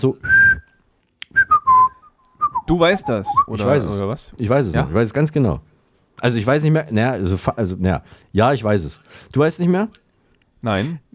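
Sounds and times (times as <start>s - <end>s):
speech: 0.0s - 0.3s, 2.7s - 10.0s, 10.6s - 11.0s
person whistling short clear tones with the mouth: 0.2s - 3.7s.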